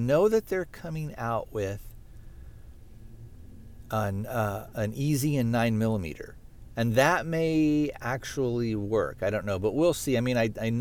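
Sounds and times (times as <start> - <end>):
speech: 0.0 - 1.9, 3.9 - 10.7
moving truck engine hum: 1.2 - 9.8
road noise in a moving truck's cabin: 1.9 - 7.9.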